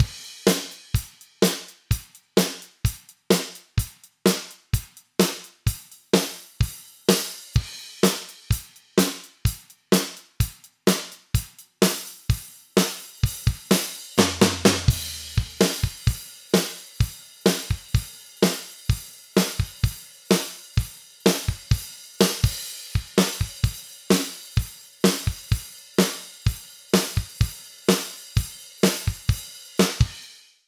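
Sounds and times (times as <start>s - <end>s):
drums: 0.0s - 30.6s.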